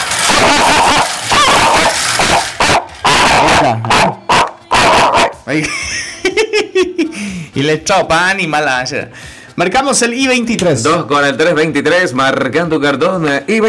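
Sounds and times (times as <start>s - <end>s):
dog barking and yipping: 0.0s - 5.4s
speech: 5.5s - 6.0s, 6.8s - 13.6s
laughter: 5.5s - 7.4s.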